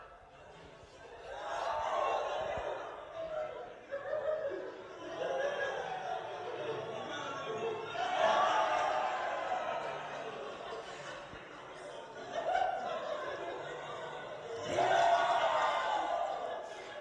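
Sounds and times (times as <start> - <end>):
people laughing: 0.0 - 16.9
small family group cheering and whooping at a baby: 1.2 - 6.3, 7.9 - 10.3, 14.6 - 16.9.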